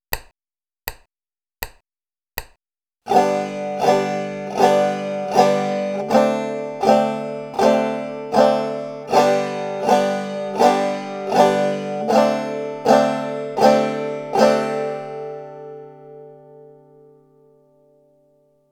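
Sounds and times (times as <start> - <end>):
chord change from G to D7: 3.1 - 17.4.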